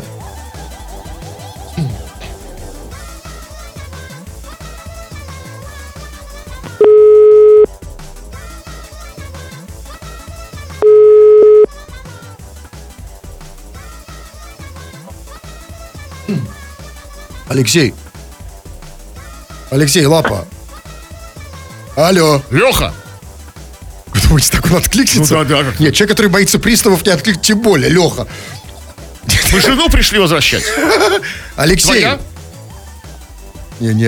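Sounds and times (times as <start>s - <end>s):
busy music: 0.0s - 3.5s, 16.2s - 21.3s, 21.9s - 34.0s
telephone ringback tone while calling: 6.8s - 7.7s, 10.8s - 11.7s
speech: 17.5s - 18.0s, 19.7s - 20.5s, 22.0s - 23.0s, 24.3s - 28.6s, 29.5s - 32.3s, 33.8s - 34.0s
laughter: 27.7s - 32.2s.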